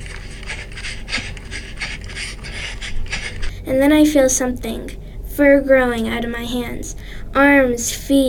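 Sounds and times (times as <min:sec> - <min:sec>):
rustling: 0:00.0 - 0:03.5
heavy rapid raspy panting: 0:00.0 - 0:03.6
speech: 0:03.7 - 0:08.2.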